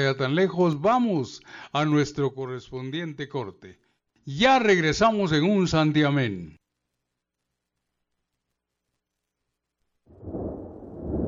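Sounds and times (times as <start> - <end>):
speech: 0.0 - 6.6
deep heavy thunder rumbling: 10.1 - 11.2.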